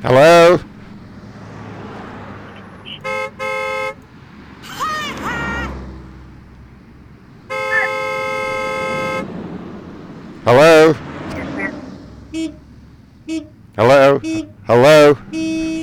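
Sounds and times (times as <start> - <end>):
speech: 0.0 - 0.7, 10.5 - 11.0, 14.2 - 15.2
rumbling road noise: 0.0 - 15.8
car horn honking: 2.2 - 4.1, 7.4 - 9.4, 10.5 - 15.8.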